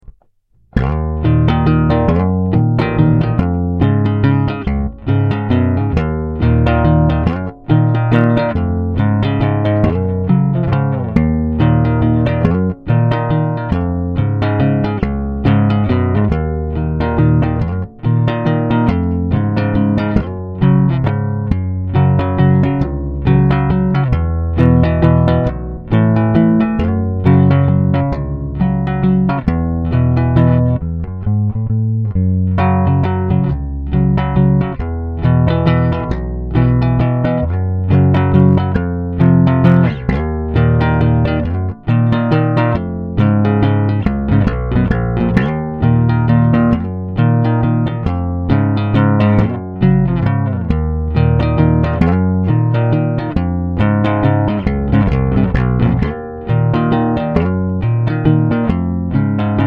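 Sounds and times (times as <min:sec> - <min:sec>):
bass guitar: 0:00.0 - 0:59.6.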